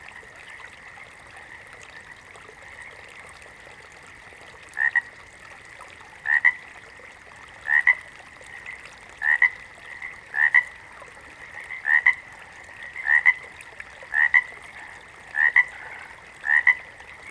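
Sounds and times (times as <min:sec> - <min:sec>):
water frog giving double-pulsed croaks: 0:04.8 - 0:05.1, 0:06.2 - 0:06.6, 0:07.6 - 0:10.8, 0:11.5 - 0:13.5, 0:14.1 - 0:17.0.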